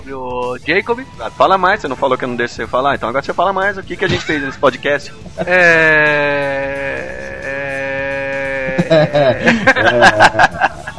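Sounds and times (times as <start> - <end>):
speech: 0.0 - 6.8, 8.9 - 10.6
person imitating a goat bleating: 5.4 - 9.6
person chuckling: 5.4 - 10.9.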